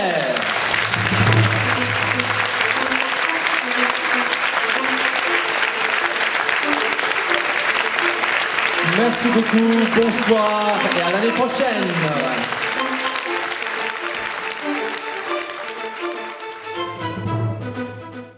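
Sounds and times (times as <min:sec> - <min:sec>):
loud sustained applause from a large audience: 0:00.0 - 0:17.5
low musical hum: 0:00.8 - 0:03.3
speech: 0:09.1 - 0:12.6.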